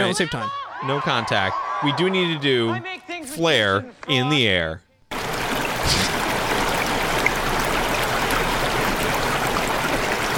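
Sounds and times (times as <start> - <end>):
speech: 0.1 - 4.8
liquid pouring as bartenders serve drinks at a bar: 5.1 - 10.3.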